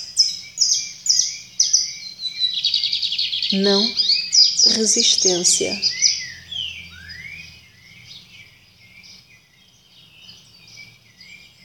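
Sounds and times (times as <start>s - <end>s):
bird singing descending chirps and a rapid trill: 0.0s - 9.2s
speech: 3.5s - 4.0s, 4.6s - 6.0s.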